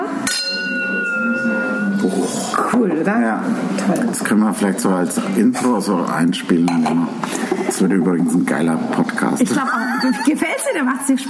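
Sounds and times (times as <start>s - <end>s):
clear steady ringing tone of glass: 0.2s - 2.5s
glasses clinking in a toast: 0.2s - 2.5s
speech: 2.8s - 11.2s
laughter: 7.2s - 8.2s, 9.4s - 11.1s.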